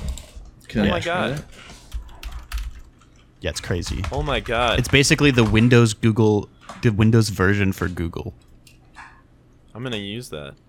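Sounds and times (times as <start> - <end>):
speech: 0.7 - 1.8, 3.4 - 8.5, 9.8 - 10.6
typing on a computer keyboard: 1.9 - 3.2, 3.8 - 5.8.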